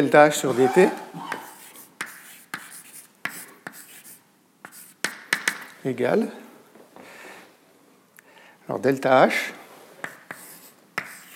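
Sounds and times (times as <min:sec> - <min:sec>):
speech: 0:00.0 - 0:01.3, 0:05.8 - 0:06.4, 0:08.7 - 0:09.6
results written out by hand with scratching strokes and taps: 0:00.6 - 0:05.5, 0:10.0 - 0:11.3.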